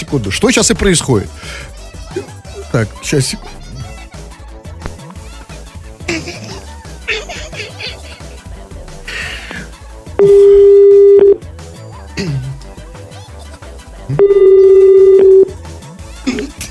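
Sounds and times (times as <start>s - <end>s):
speech: 0.0s - 3.6s
laughter: 6.1s - 9.3s
phone line ring tones as a call is placed: 10.2s - 11.4s, 14.1s - 15.5s.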